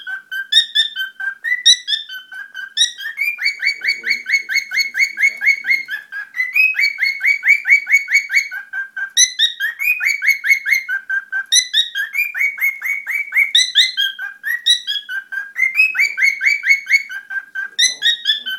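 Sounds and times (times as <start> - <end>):
cockatiel chirping calls with quick rising whistled chirps: 0.0 - 18.5.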